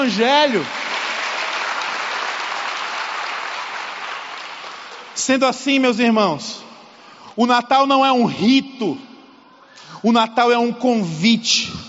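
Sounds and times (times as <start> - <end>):
speech: 0.0 - 0.8, 5.3 - 6.7, 7.4 - 9.1, 10.0 - 11.8
audience applauding: 0.0 - 5.2.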